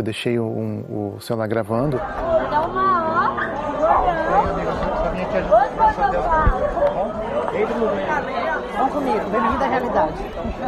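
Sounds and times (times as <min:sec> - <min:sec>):
speech: 0:00.0 - 0:03.0, 0:04.0 - 0:10.6
dense crowd chatter of people milling and walking around: 0:00.0 - 0:10.6.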